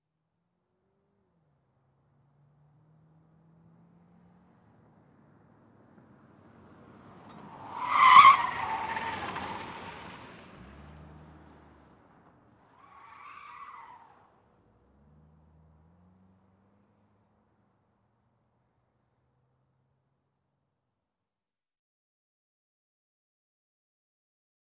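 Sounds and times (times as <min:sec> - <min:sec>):
sedan accelerating through a corner: 0:00.7 - 0:20.2.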